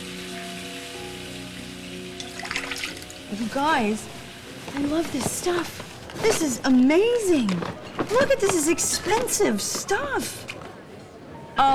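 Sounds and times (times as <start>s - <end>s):
shower water spraying: 0.0s - 8.7s
speech: 3.3s - 10.5s, 11.6s - 11.7s.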